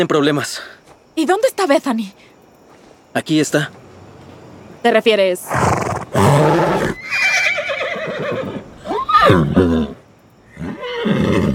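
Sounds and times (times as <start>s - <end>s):
speech: 0.0s - 2.3s, 3.1s - 3.8s, 4.8s - 6.8s, 9.2s - 10.0s
horse whinnying loudly: 5.4s - 11.5s.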